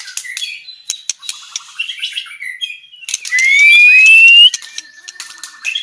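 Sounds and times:
Aceh type white-rumped shama singing: 3.4 - 4.5.

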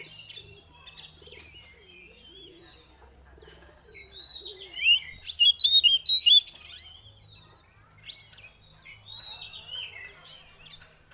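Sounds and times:
Oriental magpie-robin giving thin whistles and bright whistled notes: 4.8 - 6.4.

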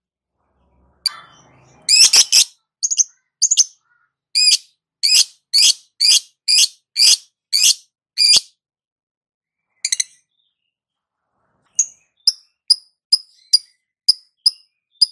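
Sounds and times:
lovebird sharp single squawks: 1.0 - 8.5
lovebird calling: 1.1 - 3.8, 4.4 - 8.5.

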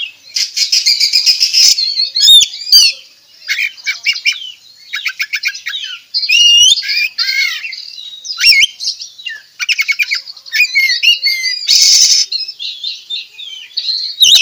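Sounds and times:
Oriental magpie-robin song: 0.0 - 14.3.

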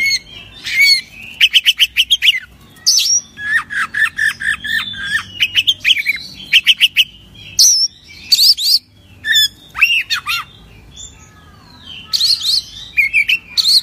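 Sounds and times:
Oriental magpie-robin song: 0.0 - 13.8.

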